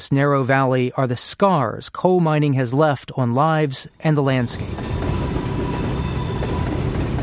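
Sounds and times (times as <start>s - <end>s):
speech: 0.0s - 5.1s
train rumbling along railroad tracks: 4.4s - 7.2s.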